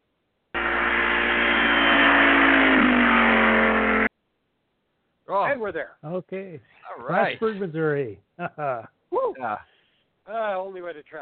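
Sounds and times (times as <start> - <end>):
fast car accelerating hard with engine revving: 0.6 - 4.1
speech: 5.3 - 9.7, 10.3 - 11.2.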